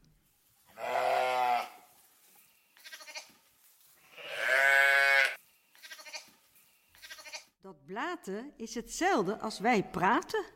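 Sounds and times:
lambs bleating loudly: 0.8s - 1.8s, 2.8s - 3.4s, 4.0s - 6.4s, 7.0s - 7.5s
speech: 8.0s - 10.5s.

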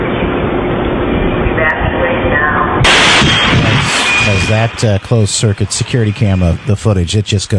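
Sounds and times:
continuous low heavy rumble: 0.0s - 6.8s
RV explosion: 2.8s - 4.9s
speech: 4.5s - 7.5s.

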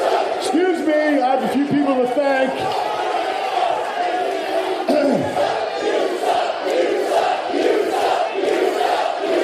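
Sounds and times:
large arena crowd jeering and shouting: 0.0s - 9.4s
speech: 1.9s - 2.9s.

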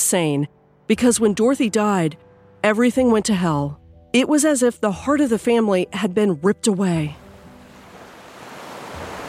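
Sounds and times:
speech: 0.1s - 7.2s
ocean waves and surf: 7.3s - 9.2s.

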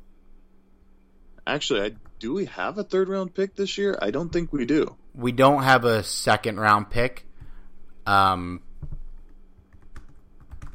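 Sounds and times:
low steady hum: 0.0s - 10.7s
speech: 1.5s - 7.3s, 8.0s - 8.6s
typing on a computer keyboard: 8.8s - 10.7s.

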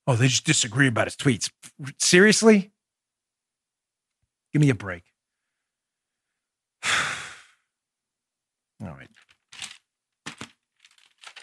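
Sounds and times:
speech: 0.1s - 2.8s, 4.5s - 5.1s, 8.8s - 9.2s
paper page being turned, rustling: 9.1s - 11.4s.

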